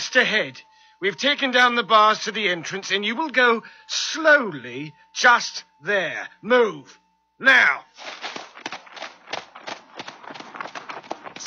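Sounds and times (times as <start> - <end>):
speech: 0.1 - 8.2
several horses trotting into a pasture: 8.0 - 11.4.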